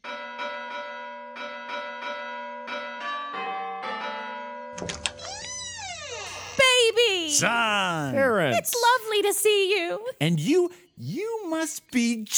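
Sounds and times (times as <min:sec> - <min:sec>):
melodic doorbell chime: 0:00.0 - 0:05.2
speech: 0:04.8 - 0:05.1, 0:07.3 - 0:12.3.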